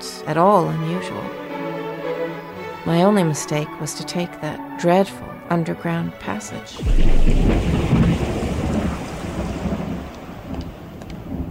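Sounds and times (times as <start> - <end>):
speech: 0.2 - 1.4, 2.3 - 8.0
deep low rumble of thunder: 6.8 - 11.4
steady rain pouring with dense hiss: 6.8 - 11.4.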